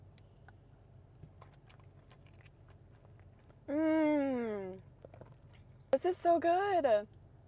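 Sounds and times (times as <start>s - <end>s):
chewing lime icebox cake with cookies: 0.0s - 3.6s, 4.5s - 6.0s
speech: 6.0s - 7.2s.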